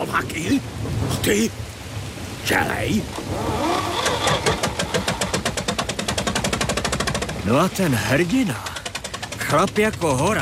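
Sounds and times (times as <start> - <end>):
speech: 0.1 - 1.8, 2.4 - 4.0, 7.4 - 8.7, 9.5 - 10.4
tractor diesel engine chugging while towing a car: 4.8 - 10.4.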